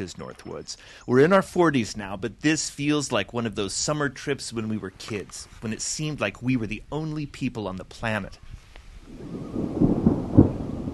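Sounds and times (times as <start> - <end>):
speech: 0.0 - 9.9
thunder on an early morning by a lake: 9.0 - 10.9.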